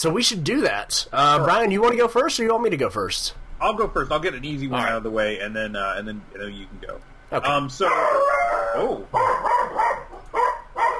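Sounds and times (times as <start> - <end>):
speech: 0.0 - 9.8
dog whining howl: 7.8 - 10.9
dog barking in short high-pitched barks: 9.2 - 10.9.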